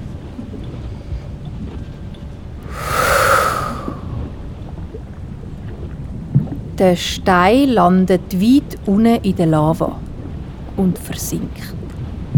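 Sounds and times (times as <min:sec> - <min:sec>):
forceful snort exhaled through the mouth: 0:02.7 - 0:04.1
speech: 0:06.8 - 0:10.0, 0:10.8 - 0:11.8.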